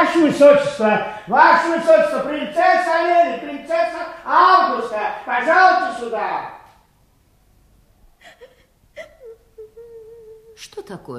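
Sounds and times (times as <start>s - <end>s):
speech: 0.2s - 6.6s, 10.6s - 11.1s
girl crying: 8.2s - 10.6s
girl gasping sobs: 8.2s - 10.6s
girl whimpering moan: 8.2s - 10.6s.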